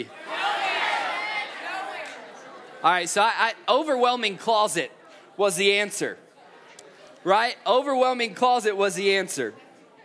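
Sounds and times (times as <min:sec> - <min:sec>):
speech: 0:00.0 - 0:00.2, 0:02.8 - 0:06.2, 0:07.2 - 0:09.6
crowd of people shouting out answers: 0:00.0 - 0:02.8.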